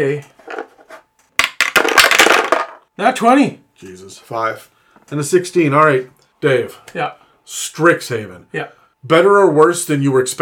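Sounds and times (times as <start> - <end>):
speech: 0.0 - 0.3, 3.0 - 10.4
dice rolling across a hard tabletop: 0.4 - 2.8.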